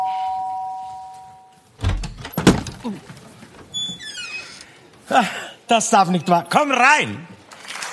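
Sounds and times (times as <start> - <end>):
doorbell chime: 0.0 - 1.6
clattering thumps and knocks: 1.8 - 3.8
speech: 2.8 - 3.2, 5.1 - 7.3.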